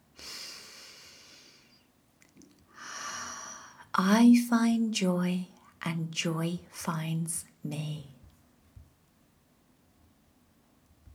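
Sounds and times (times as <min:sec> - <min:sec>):
deep breath inhale and exhale: 0:00.2 - 0:01.9, 0:02.7 - 0:03.9
speech: 0:04.0 - 0:08.1.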